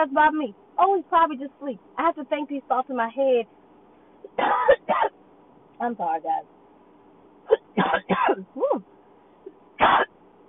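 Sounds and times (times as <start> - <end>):
speech: 0.0 - 3.6, 4.3 - 5.2, 5.8 - 6.6, 7.5 - 8.9
person coughing harshly: 4.4 - 5.1, 7.5 - 8.8, 9.8 - 10.1.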